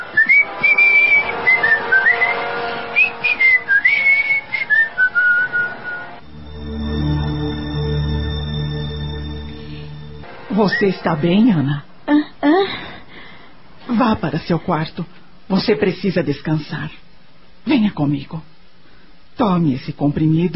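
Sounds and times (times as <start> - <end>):
person whistling a lively wandering tune: 0.0 - 6.2
steady low droning hum: 6.0 - 12.1
speech: 10.6 - 11.9, 14.1 - 17.0, 17.6 - 18.5, 19.4 - 20.5.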